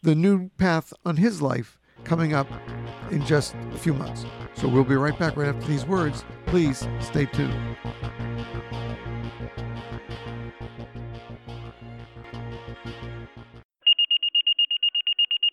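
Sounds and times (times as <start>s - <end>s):
speech: 0.0s - 8.8s
rhythmic music: 2.0s - 13.6s
fire station dispatch alert tone: 13.8s - 15.5s.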